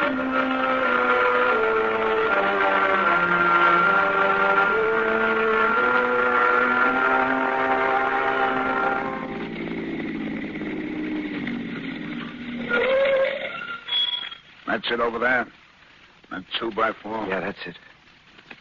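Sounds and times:
car engine droning: 0:00.0 - 0:12.8
whining harmonic tone: 0:00.0 - 0:14.5
speech: 0:14.9 - 0:15.6, 0:16.4 - 0:17.9.

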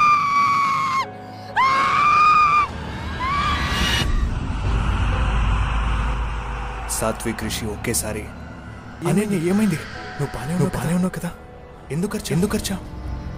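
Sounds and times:
loud high-pitched scream in a horror story set in a biology lab: 0:00.0 - 0:04.9
low rumbling background: 0:03.0 - 0:13.3
speech: 0:07.0 - 0:08.4, 0:09.0 - 0:13.0.

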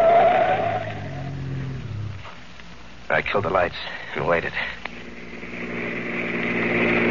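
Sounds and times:
car tires squealing while swerving off the road at a curve: 0:00.0 - 0:02.4
car engine drone while swerving off the road: 0:00.0 - 0:07.0
speech: 0:03.2 - 0:04.8.

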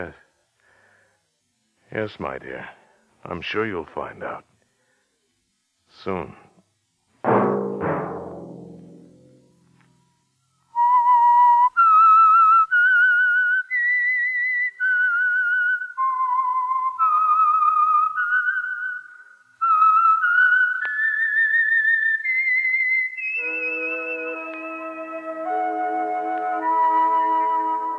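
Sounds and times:
speech: 0:00.0 - 0:00.2, 0:01.9 - 0:04.5, 0:05.9 - 0:06.5
sharp knocks: 0:07.2 - 0:09.4
solo whistled melody with vibrato: 0:10.4 - 0:27.9
sustained orchestral chords: 0:23.4 - 0:27.9.

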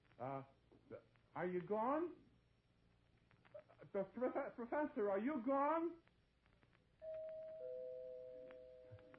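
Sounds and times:
faint hum: 0:00.0 - 0:09.1
speech: 0:00.2 - 0:02.2, 0:03.9 - 0:06.1
doorbell two-note ding-dong chime: 0:07.0 - 0:09.1.

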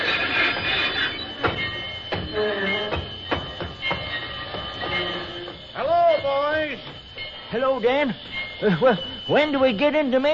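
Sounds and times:
sharp metallic clanks: 0:00.0 - 0:05.8
train rolling on a concrete road: 0:00.0 - 0:10.2
speech: 0:07.6 - 0:10.3.

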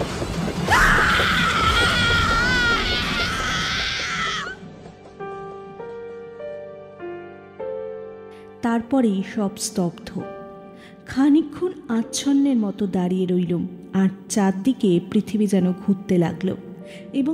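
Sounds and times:
woman screaming in anguish: 0:00.7 - 0:04.6
speech: 0:08.8 - 0:10.4, 0:11.1 - 0:17.3.

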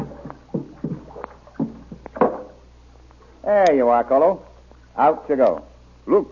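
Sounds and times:
canoe paddles splashing through water: 0:00.0 - 0:02.6
speech: 0:03.5 - 0:06.3.

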